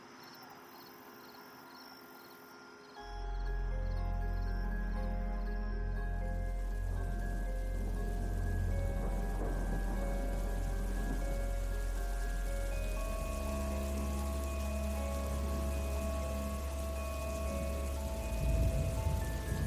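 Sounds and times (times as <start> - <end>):
low rumbling undertone: 3.2 - 19.6
rain falling during a thunderstorm: 4.2 - 19.6.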